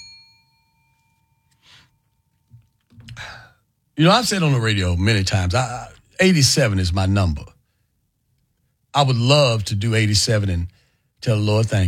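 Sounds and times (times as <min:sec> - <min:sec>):
bell struck once ringing: 0:00.0 - 0:02.4
breathy burst: 0:03.1 - 0:03.6
speech: 0:04.0 - 0:07.5, 0:09.0 - 0:11.8.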